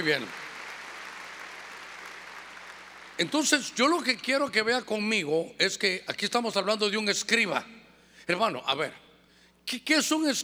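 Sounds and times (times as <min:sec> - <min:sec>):
speech: 0:00.0 - 0:00.4, 0:03.2 - 0:09.0, 0:09.6 - 0:10.4
audience clapping loudly: 0:00.0 - 0:03.2.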